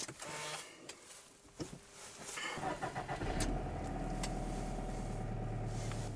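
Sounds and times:
Subaru Forester engine started with keyless push-button ignition: 2.4 - 6.1.

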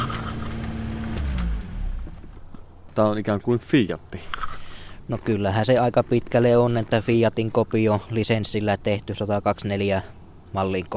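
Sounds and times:
Lada car engine idling and being switched off: 0.0 - 2.8
speech: 3.0 - 4.5, 5.1 - 10.9.

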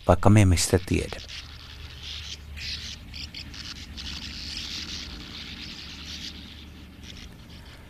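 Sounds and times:
speech: 0.0 - 1.5
sand martins chattering in a chorus: 0.8 - 7.8.

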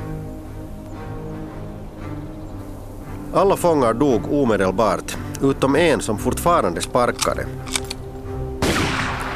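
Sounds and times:
speech: 3.3 - 7.8
sharp rifle cracks: 8.6 - 9.3.

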